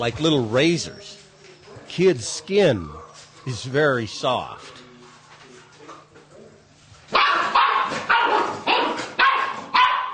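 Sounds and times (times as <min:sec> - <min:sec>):
speech: 0:00.0 - 0:01.2, 0:01.9 - 0:04.8
puppy barking: 0:07.1 - 0:10.1.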